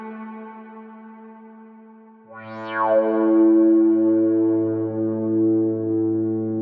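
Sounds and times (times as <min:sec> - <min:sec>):
sustained guitar notes swelling with long reverb tails: 0:02.3 - 0:06.6.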